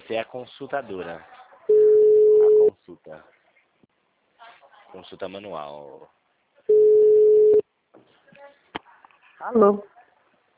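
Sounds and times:
speech: 0.1s - 1.8s, 2.6s - 3.4s, 4.9s - 6.2s, 9.4s - 10.0s
telephone tone after a dropped call: 1.7s - 2.7s, 6.7s - 7.6s.

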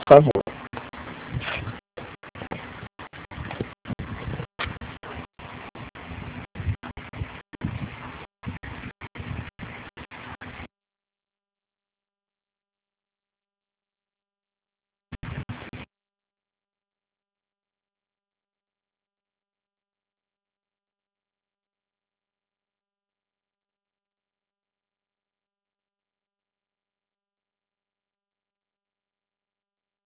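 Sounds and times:
electric fan hum over a phone line: 0.0s - 10.7s
speech: 0.1s - 0.4s.

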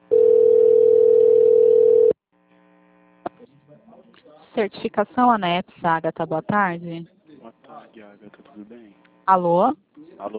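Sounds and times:
steady telephone line tone while a call connects: 0.1s - 2.2s
speech: 4.6s - 7.2s, 8.0s - 10.3s.

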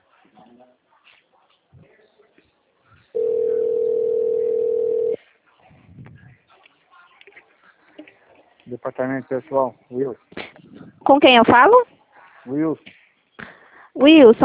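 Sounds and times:
speech: 0.4s - 0.9s, 8.7s - 10.4s, 11.1s - 13.0s, 14.0s - 14.4s
telephone line tone during a call transfer: 3.2s - 5.2s.

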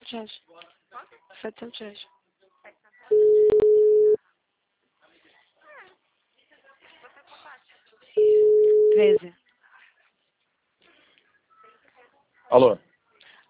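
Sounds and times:
faint murmuring talk: 0.0s - 13.4s
speech: 0.1s - 0.5s, 1.4s - 2.1s, 9.0s - 9.4s, 12.5s - 12.9s
telephone line tone beeps after a dropped call: 3.1s - 4.2s, 8.2s - 9.2s.

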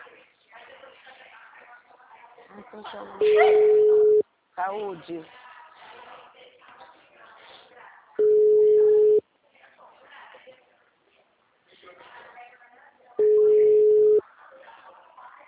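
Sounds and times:
speech: 2.6s - 5.4s
loud telephone ringback tone during a call: 3.2s - 4.2s, 8.2s - 9.2s, 13.2s - 14.2s.

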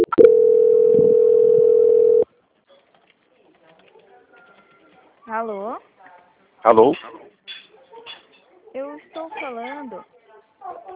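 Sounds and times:
telephone call-transfer tone beep: 0.0s - 2.2s
speech: 6.7s - 7.1s.

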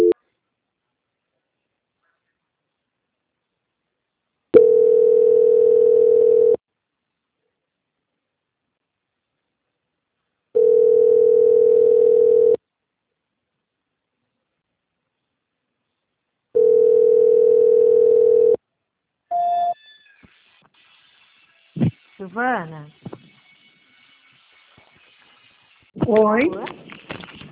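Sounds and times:
telephone ringback tone while a transferred call waits for an answer: 4.6s - 6.6s, 10.6s - 12.6s, 16.6s - 18.6s
speech: 22.3s - 23.1s, 26.2s - 26.8s.

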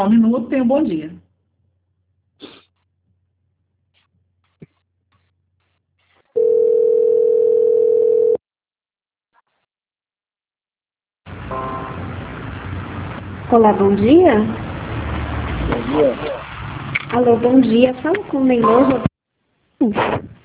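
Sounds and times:
speech: 0.0s - 1.2s, 13.5s - 14.6s, 15.7s - 16.3s, 17.1s - 19.1s, 19.8s - 20.3s
steady phone line tone while a bank call is transferred: 6.4s - 8.4s, 11.3s - 12.4s
loud burst of hissing line noise: 11.3s - 19.1s.

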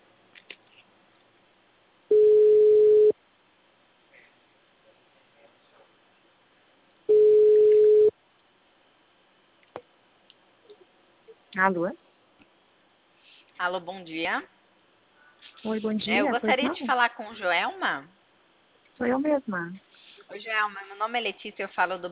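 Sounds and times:
telephone ringback tones from a test call being placed: 2.1s - 3.1s, 7.1s - 8.1s
speech: 11.6s - 12.0s, 13.6s - 14.6s, 15.6s - 18.2s, 19.0s - 22.1s.

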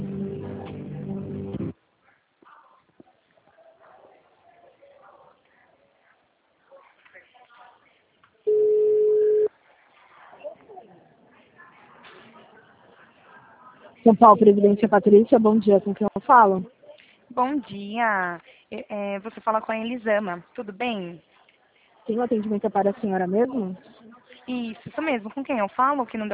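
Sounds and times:
low buzzing telephone line tone during call transfer: 8.5s - 9.5s
short steady telephone line beep: 8.5s - 9.5s
speech: 14.0s - 16.7s, 17.4s - 21.3s, 22.1s - 26.3s.

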